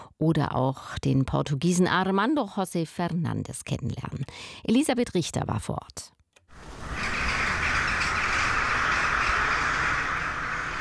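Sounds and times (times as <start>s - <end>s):
speech: 0.2s - 6.2s
large flock of crows cawing in a castle garden: 6.6s - 10.7s.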